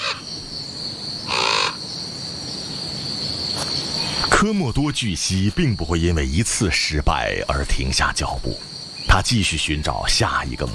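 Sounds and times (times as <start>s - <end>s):
crow cawing: 0.0s - 0.3s, 1.3s - 1.8s
speech: 4.4s - 10.7s.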